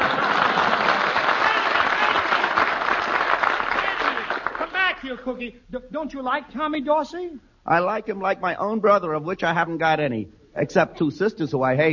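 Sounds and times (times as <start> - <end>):
large audience applauding: 0.0 - 5.2
speech: 5.2 - 11.9.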